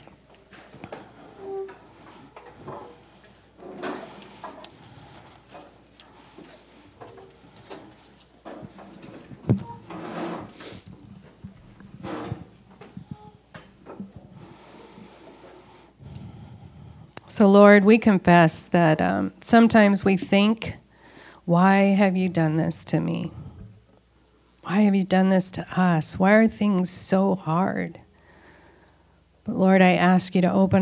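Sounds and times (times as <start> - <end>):
chairs clunking and scraping in a large room as a crowd stands: 0.0 - 14.4
speech: 17.4 - 20.8, 21.5 - 23.4, 24.7 - 28.0, 29.5 - 30.7.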